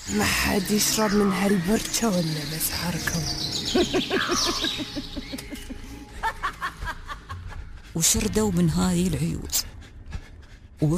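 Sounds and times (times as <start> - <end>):
speech: 0.1 - 5.5, 8.0 - 9.7, 10.8 - 10.9
crows calling: 0.7 - 5.9.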